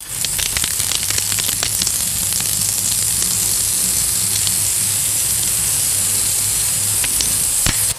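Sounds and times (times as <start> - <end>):
wet fat slapped on hot grill sizzling: 0.0 - 7.9.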